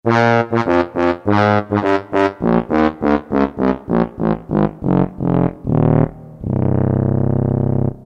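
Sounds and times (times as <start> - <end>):
orchestral tuba: 0.0 - 8.0.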